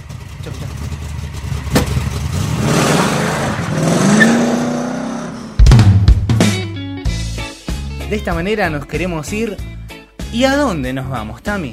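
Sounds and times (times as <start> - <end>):
motorcycle engine starting and revving: 0.0 - 6.5
speech: 8.1 - 11.7.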